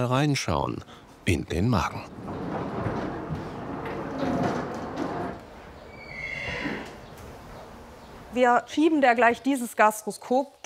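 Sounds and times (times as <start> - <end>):
speech: 0.0 - 2.3, 8.4 - 10.6
stable rustling: 2.0 - 5.8
Friesian mare short high-pitched whinny: 5.8 - 7.0.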